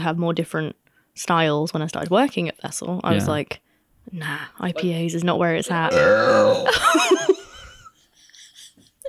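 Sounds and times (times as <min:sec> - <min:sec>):
speech: 0:00.0 - 0:07.4
person burping loudly and roughly: 0:05.7 - 0:06.8.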